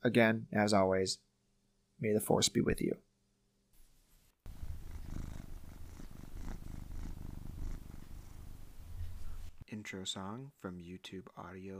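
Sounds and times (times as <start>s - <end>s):
speech: 0.0s - 1.3s, 2.0s - 3.1s, 9.7s - 11.7s
cat purring: 4.5s - 9.6s.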